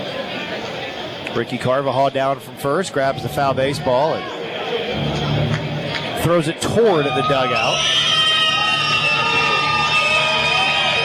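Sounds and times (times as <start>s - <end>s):
speech: 1.3s - 4.4s, 6.2s - 8.0s
large baseball stadium crowd cheering and shouting: 2.6s - 11.0s
scattered whoops from a stadium crowd: 7.6s - 11.0s.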